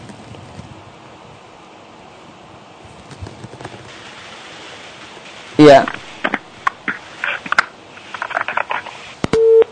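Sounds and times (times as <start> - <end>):
crackly noisy phone line with clicks: 2.8 - 9.7
speech: 5.6 - 6.0
telephone busy tone after call disconnected: 9.4 - 9.7.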